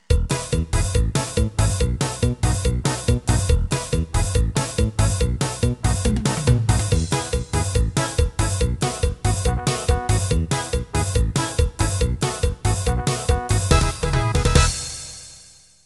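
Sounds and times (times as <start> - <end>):
quebradita music: 0.0 - 15.7.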